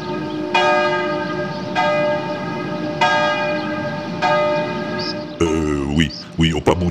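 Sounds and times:
church bell in an old cathedral's bell tower striking the hour at noon: 0:00.0 - 0:05.3
speech: 0:06.4 - 0:06.8.

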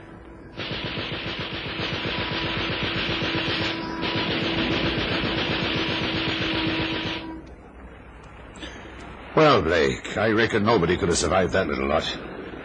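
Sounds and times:
low engine drone: 0:00.0 - 0:12.6
Vickers K machine gun firing a long sustained burst: 0:00.5 - 0:07.4
speech: 0:09.4 - 0:12.3.

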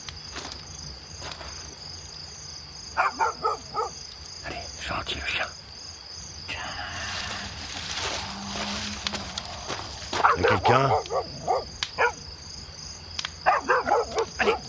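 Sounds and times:
crickets or insects chirring: 0:00.0 - 0:14.6
dog barking: 0:03.0 - 0:04.0, 0:10.2 - 0:12.2, 0:13.4 - 0:14.6
movement: 0:06.7 - 0:11.2
speech: 0:10.7 - 0:11.1.

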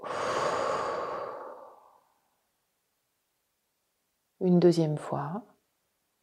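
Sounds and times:
deep breath blown slowly out during a sophrology relaxation exercise: 0:00.0 - 0:02.2
speech: 0:04.4 - 0:05.5.

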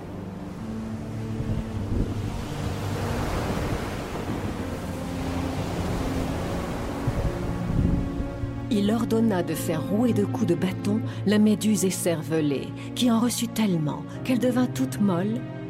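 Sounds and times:
stormy sea with crashing waves: 0:00.0 - 0:08.7
speech: 0:08.8 - 0:15.5.

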